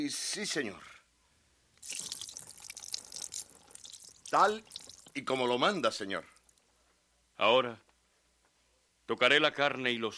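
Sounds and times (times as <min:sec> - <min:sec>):
speech: 0:00.0 - 0:01.0, 0:04.3 - 0:06.3, 0:07.4 - 0:07.8, 0:09.1 - 0:10.1
broth being poured out onto a rock: 0:01.8 - 0:05.3.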